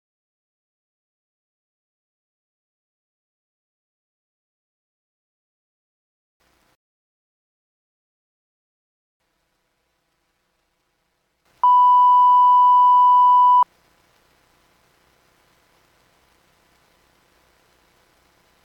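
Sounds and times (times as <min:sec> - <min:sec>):
1 kHz sine tone sampled at 24 kHz with 12-bit engine: 0:11.6 - 0:13.7.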